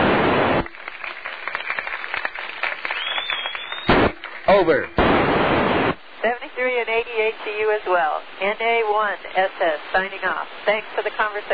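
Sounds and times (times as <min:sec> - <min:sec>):
static hiss over an amateur radio link: 0:00.0 - 0:11.5
applause from a group of assistants over an amateur radio link: 0:00.6 - 0:05.0
speech: 0:04.5 - 0:05.0, 0:06.2 - 0:11.5.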